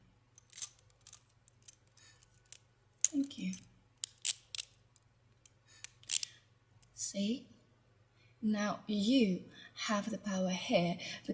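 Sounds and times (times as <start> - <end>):
handcuffs clicking shut on a person cuffed to a chair: 0.4 - 6.9
speech: 3.2 - 3.7, 7.1 - 7.5, 8.4 - 11.3.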